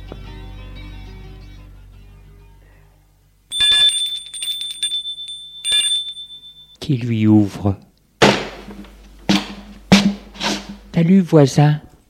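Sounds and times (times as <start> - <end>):
apartment doorbell ringing: 3.5 - 6.8
speech: 6.9 - 7.9, 11.0 - 11.8.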